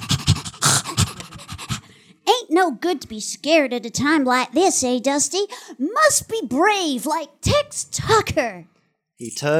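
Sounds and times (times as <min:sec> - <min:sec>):
dog panting excitedly while jumping up at a person: 0:00.0 - 0:01.9
speech: 0:02.6 - 0:09.5.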